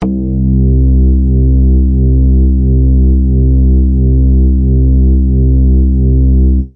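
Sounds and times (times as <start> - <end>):
superlong synthesizer bass note: 0.0 - 6.7.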